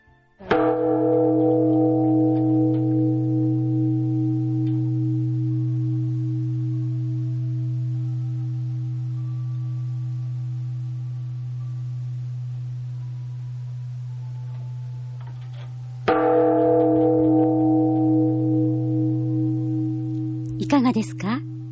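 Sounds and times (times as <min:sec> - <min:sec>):
large temple time bell struck in Tanabe: 0:00.5 - 0:21.7
speech: 0:20.8 - 0:21.5.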